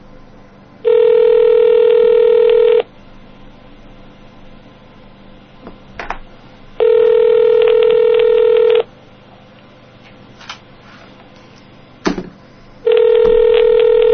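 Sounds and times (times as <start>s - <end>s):
ringback tone of an outgoing phone call through a handset: 0.8s - 2.8s, 6.8s - 8.9s, 12.9s - 14.1s.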